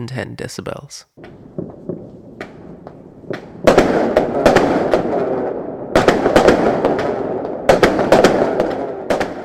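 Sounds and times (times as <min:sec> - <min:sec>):
speech: 0:00.0 - 0:01.4
string of firecrackers exploding: 0:01.2 - 0:09.4.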